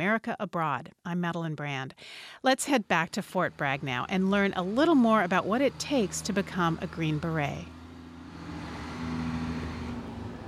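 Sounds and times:
speech: 0:00.0 - 0:07.8
unarmored military utility truck driving by at Fort Bragg: 0:02.9 - 0:10.4.

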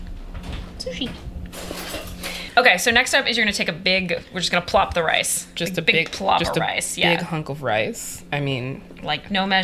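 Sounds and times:
speech: 0:00.9 - 0:01.3, 0:02.6 - 0:09.6
cutlery and dishes clinking in a kitchen: 0:01.6 - 0:02.4.

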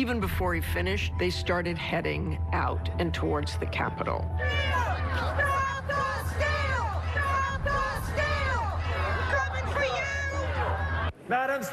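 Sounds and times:
speech: 0:00.0 - 0:06.0
agitated rally crowd shouting and yelling: 0:04.4 - 0:11.2.

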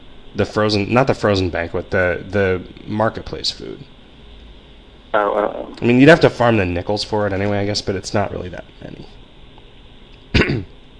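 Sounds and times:
speech: 0:00.4 - 0:03.9, 0:05.2 - 0:09.2
person coughing: 0:10.3 - 0:10.7.

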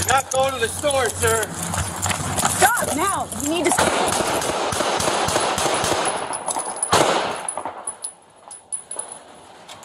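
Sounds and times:
speech: 0:00.1 - 0:01.8, 0:03.0 - 0:04.7
rapid gunfire: 0:03.7 - 0:06.3
loud gunshots: 0:03.7 - 0:07.9.

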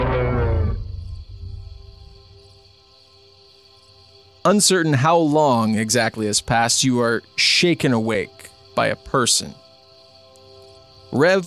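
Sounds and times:
huge furry creature roaring while running into the forest: 0:00.0 - 0:01.0
speech: 0:04.4 - 0:09.6, 0:11.1 - 0:11.4.

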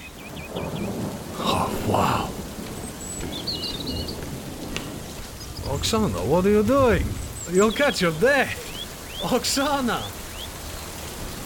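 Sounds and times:
steady rain: 0:00.0 - 0:11.4
thunder rumbling during rain: 0:00.3 - 0:09.0
speech: 0:05.8 - 0:08.6, 0:09.2 - 0:10.2.

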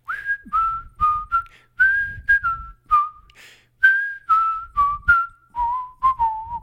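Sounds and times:
person whistling a cheerful bouncy melody: 0:00.0 - 0:06.6
breaths between whistled phrases: 0:01.4 - 0:01.8, 0:03.3 - 0:03.8.

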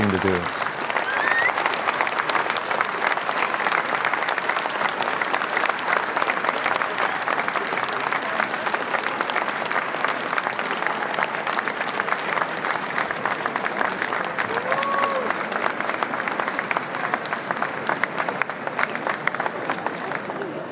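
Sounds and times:
large crowd applauding energetically: 0:00.0 - 0:20.6
speech: 0:00.1 - 0:00.6
faint cheers: 0:00.9 - 0:01.7, 0:14.5 - 0:15.4.

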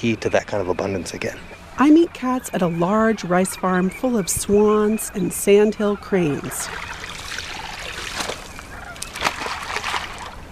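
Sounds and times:
speech: 0:00.0 - 0:07.0
geese honking faintly: 0:00.0 - 0:10.5
outdoor noise: 0:00.0 - 0:10.5
plankton net splashing into river water: 0:06.7 - 0:10.4.

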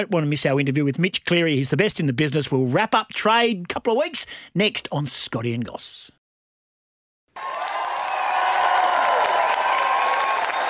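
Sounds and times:
speech: 0:00.0 - 0:06.2
crowd applause: 0:07.4 - 0:10.6.

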